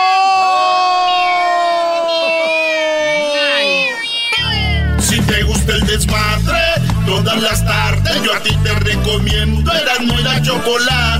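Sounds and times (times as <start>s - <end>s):
crowd-like cheering and noise: 0.0s - 8.5s
several kittens mewing in high overlapping cries: 0.8s - 4.9s
speech: 7.3s - 11.1s.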